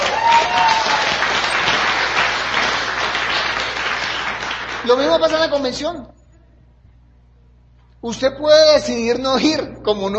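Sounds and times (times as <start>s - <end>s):
audience applause: 0.0s - 5.1s
speech: 4.9s - 6.2s, 8.0s - 10.1s.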